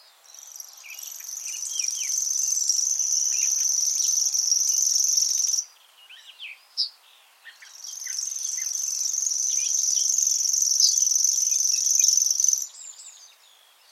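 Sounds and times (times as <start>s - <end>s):
grasshopper warbler reeling: 0.3s - 5.7s, 7.7s - 12.8s.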